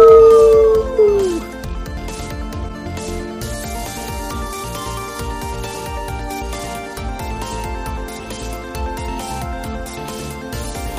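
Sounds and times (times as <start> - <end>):
single wolf howling: 0.0 - 1.6.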